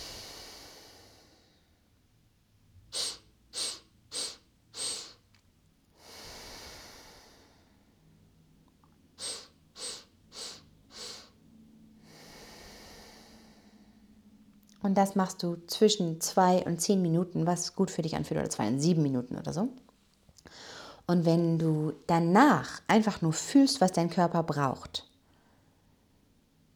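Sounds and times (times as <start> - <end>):
quick sharp nasal inhalations in a breathing exercise: 0.0 - 1.4, 2.9 - 5.4, 6.0 - 7.7, 9.2 - 11.4, 12.0 - 13.8, 20.4 - 21.0
long soft hissing exhalation in a breathing exercise: 0.0 - 1.5, 2.9 - 5.3, 6.0 - 7.8, 9.2 - 11.4, 12.1 - 13.8
speech: 14.8 - 19.9, 21.1 - 25.1.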